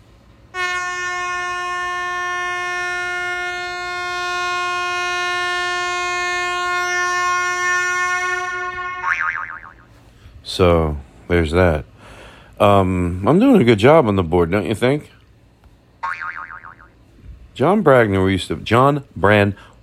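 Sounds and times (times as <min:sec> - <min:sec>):
horn honk sound effect from soundboard: 0:00.5 - 0:09.2
speech: 0:10.6 - 0:11.9, 0:12.6 - 0:15.1, 0:17.6 - 0:19.8.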